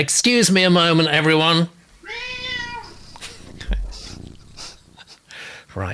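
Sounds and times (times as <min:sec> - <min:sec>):
speech: 0:00.0 - 0:02.3, 0:05.8 - 0:05.9
soft rustling: 0:01.9 - 0:05.1
cat meowing: 0:02.0 - 0:04.6
faint murmuring: 0:02.3 - 0:05.2
dull thump: 0:03.2 - 0:04.5.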